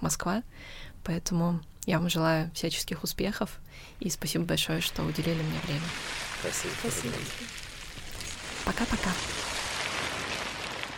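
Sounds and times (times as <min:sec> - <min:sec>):
speech: 0:00.0 - 0:07.7, 0:08.6 - 0:09.5
loose beach plastic waste shaken and rolled to mimic ocean surf: 0:04.8 - 0:10.9.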